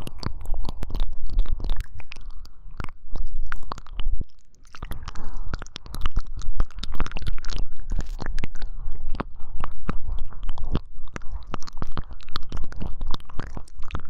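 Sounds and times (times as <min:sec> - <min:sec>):
wet ear licking: 0:00.0 - 0:14.0.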